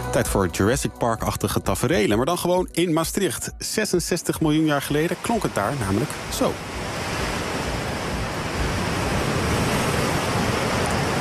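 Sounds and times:
speech: 0.1 - 6.9
sea waves rolling in a steady dense roar of surf: 4.2 - 11.1.

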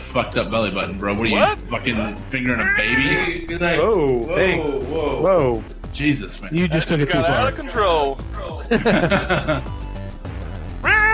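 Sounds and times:
speech: 0.1 - 9.8
laughter: 2.5 - 5.3, 6.6 - 9.7
cat meowing: 2.6 - 3.5, 10.8 - 11.1.

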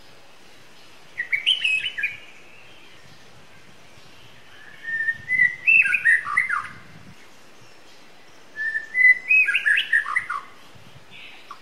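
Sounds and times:
wild white-rumped shama song of bright whistles in forest: 1.2 - 3.2, 4.1 - 6.9, 7.6 - 11.6.

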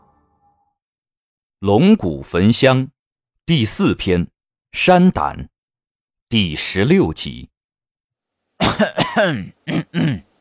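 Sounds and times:
speech: 1.6 - 5.5, 6.3 - 7.5, 8.6 - 10.3
narrator clearing throat: 8.6 - 10.3
narrator coughing deliberately: 8.6 - 10.3.

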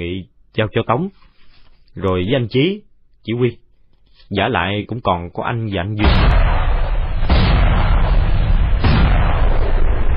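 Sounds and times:
speech: 0.0 - 1.2, 2.0 - 3.6, 4.2 - 6.5
81 mm mortar shells exploding around the base of a cone-shaped hill: 6.0 - 10.1.

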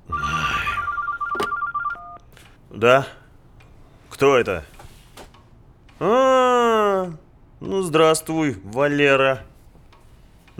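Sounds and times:
telephone ringing with a rapid warbling electronic trill: 0.0 - 2.2
speech: 2.8 - 3.2, 4.2 - 4.7, 6.0 - 9.5.

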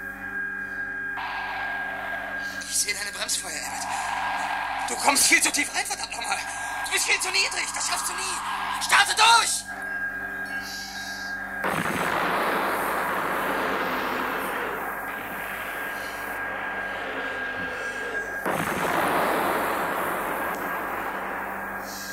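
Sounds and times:
steady tone: 0.0 - 22.1
speech: 2.8 - 9.8
shuttle explosion with sustained rumbling roar: 11.6 - 16.4, 18.4 - 21.9.

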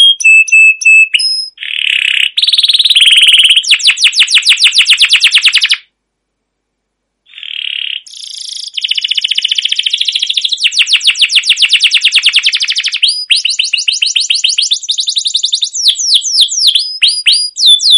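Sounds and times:
canary singing as a lure for other canaries: 0.0 - 5.9, 7.3 - 17.9.

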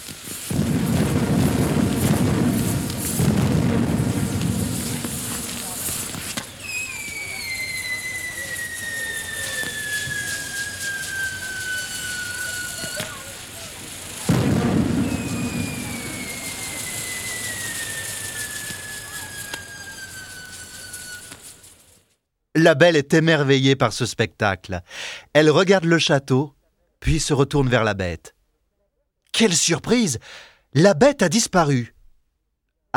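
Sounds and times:
fireworks exploding in the sky above a castle park: 0.0 - 22.1
speech: 22.6 - 28.4, 29.3 - 32.0.

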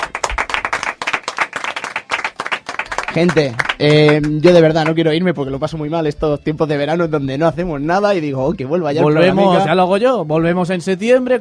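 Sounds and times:
group applauding with hand claps: 0.0 - 5.1
speech: 3.1 - 11.3.

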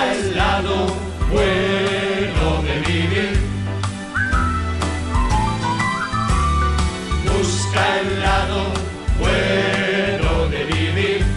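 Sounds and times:
instrumental backing with deep bass: 0.0 - 11.3
person whistling a bright gliding tune: 4.1 - 6.8.

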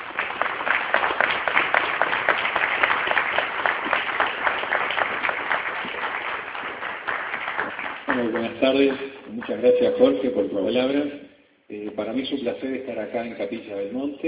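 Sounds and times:
audience applause at a UFO congress: 0.0 - 9.6
speech: 8.6 - 11.2, 11.8 - 14.2.

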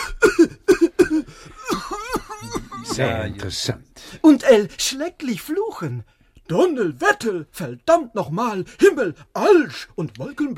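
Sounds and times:
person imitating the cough of a cigar smoker: 0.0 - 3.1
laughter: 1.6 - 3.6
speech: 3.0 - 10.5.

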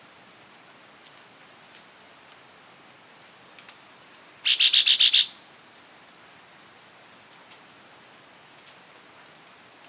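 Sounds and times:
Chestnut-bellied euphonia Euphonia pectoralis calling high bright notes: 4.5 - 5.4.

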